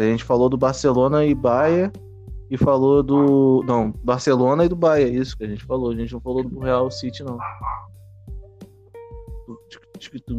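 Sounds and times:
speech: 0.0s - 7.9s, 9.5s - 10.3s
dog barking: 3.1s - 4.7s, 7.3s - 7.9s.

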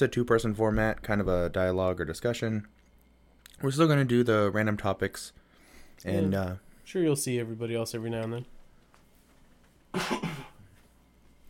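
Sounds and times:
speech: 0.0s - 2.8s, 3.6s - 5.4s, 6.0s - 8.6s, 9.9s - 10.4s
harsh cough with rough throat-clearing tail: 9.9s - 10.7s.

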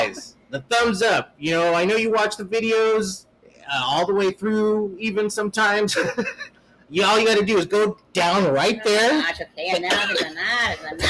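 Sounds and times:
laughter: 0.0s - 0.8s, 5.9s - 6.5s, 9.8s - 11.0s
speech: 0.1s - 11.0s
person coughing harshly: 6.0s - 6.4s, 9.9s - 11.0s.

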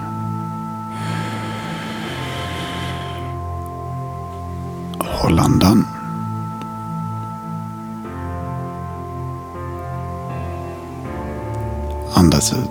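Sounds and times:
steady soft drone: 0.0s - 12.0s
long slow deep breath drawn in during a guided breathing exercise: 0.9s - 3.5s.

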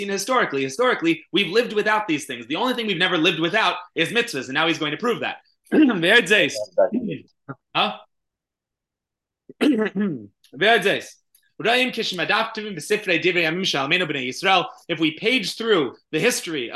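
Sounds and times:
speech: 0.0s - 8.1s, 9.6s - 16.7s
person clearing throat: 9.5s - 10.3s.

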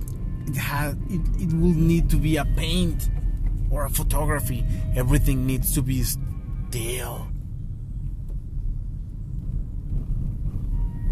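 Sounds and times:
road rumble inside a moving car: 0.0s - 11.1s
speech: 0.5s - 7.3s.

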